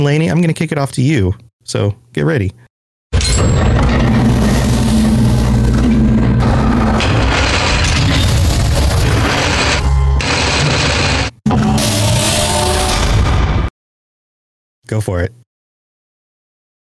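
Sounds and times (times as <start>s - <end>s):
speech: 0.0s - 2.6s, 14.9s - 15.4s
heavy vault door sound effect grinding open: 3.2s - 13.4s.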